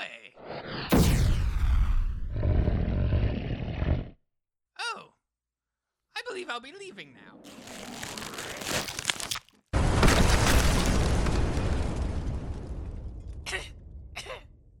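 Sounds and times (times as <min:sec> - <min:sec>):
massive explosion from a small-scale nuclear weapon destroying a tank: 0:00.4 - 0:03.4, 0:09.8 - 0:14.2
speech: 0:06.5 - 0:08.0.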